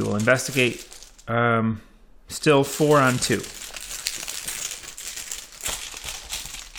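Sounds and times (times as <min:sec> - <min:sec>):
game tokens shuffled in a bag during a card game: 0:00.0 - 0:01.3, 0:02.7 - 0:06.7
speech: 0:00.0 - 0:03.6.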